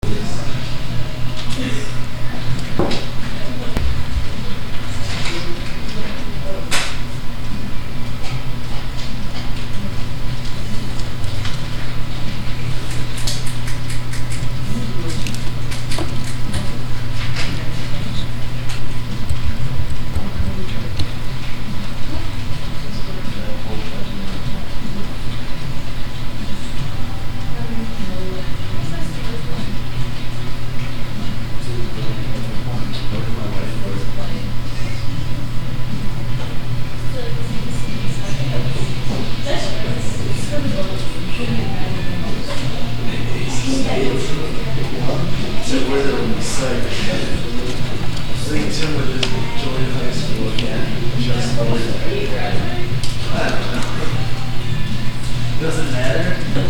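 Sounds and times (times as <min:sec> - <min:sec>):
classroom ambience: 0:00.0 - 0:56.6.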